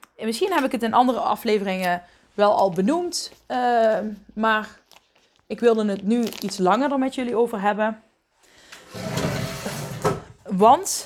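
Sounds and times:
speech: 0.2s - 4.8s, 5.5s - 8.0s, 10.6s - 11.0s
chair being moved aside, scraping across the floor: 8.8s - 10.4s.

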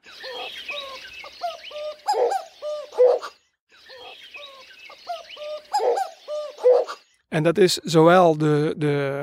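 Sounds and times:
excited male cuckoo calling in stuttering hollow bursts: 0.0s - 7.2s
chorus of other birds twittering: 0.0s - 7.5s
speech: 7.4s - 9.2s.

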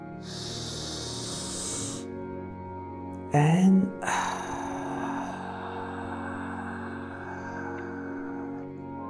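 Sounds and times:
slow deep breath drawn in during a guided breathing exercise: 0.2s - 2.1s, 4.0s - 9.0s
speech: 3.3s - 4.0s.

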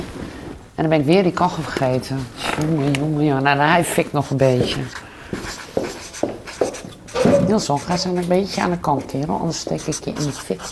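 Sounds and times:
speech: 0.8s - 5.0s, 7.5s - 10.7s
pen scratching out a signature: 5.4s - 8.2s, 9.6s - 10.7s.

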